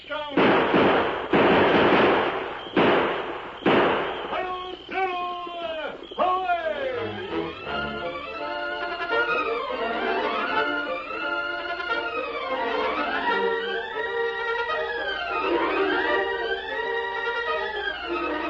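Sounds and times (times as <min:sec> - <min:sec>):
gunshots in an old Western drama: 0:00.2 - 0:04.9
people shouting: 0:04.4 - 0:18.4.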